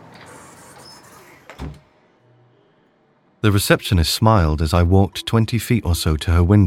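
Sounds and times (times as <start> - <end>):
glass door swinging open: 0.1 - 1.9
speech: 3.4 - 6.6.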